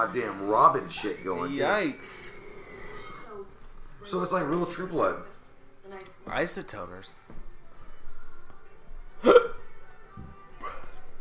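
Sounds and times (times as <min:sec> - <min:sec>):
speech: 0:00.0 - 0:02.3, 0:04.0 - 0:05.3, 0:05.9 - 0:07.4
hiccups: 0:09.2 - 0:09.7.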